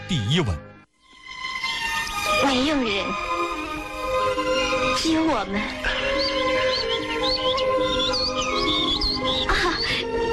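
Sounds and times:
steady tonal background: 0:00.0 - 0:10.3
speech: 0:00.1 - 0:00.7, 0:02.4 - 0:03.3, 0:05.0 - 0:06.2
two small birds chirping: 0:01.0 - 0:02.8, 0:03.6 - 0:10.3.

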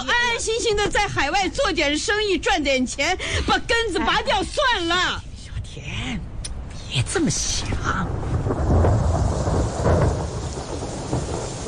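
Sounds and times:
speech: 0:00.6 - 0:06.2, 0:06.9 - 0:08.6
steady hiss: 0:03.2 - 0:11.6
low heavy thunder rumbling: 0:06.9 - 0:11.6.

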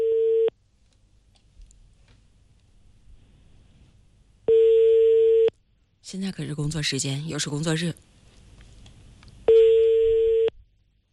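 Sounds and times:
electronic phone ringback tone, unanswered: 0:00.0 - 0:00.5, 0:04.5 - 0:05.5, 0:09.5 - 0:10.5
speech: 0:06.1 - 0:08.1.

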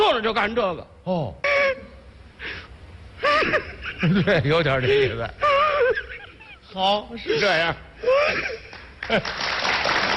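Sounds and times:
speech: 0:00.2 - 0:01.5, 0:03.4 - 0:06.0, 0:06.7 - 0:09.6
person gasping and sobbing during a comic stage dialogue: 0:01.1 - 0:02.0, 0:03.2 - 0:04.2, 0:04.8 - 0:06.6, 0:07.2 - 0:08.7
laughter: 0:03.2 - 0:06.7, 0:07.3 - 0:09.5.

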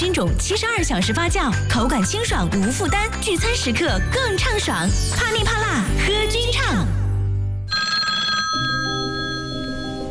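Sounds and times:
speech: 0:00.0 - 0:07.0
telephone ringing: 0:07.7 - 0:10.0.

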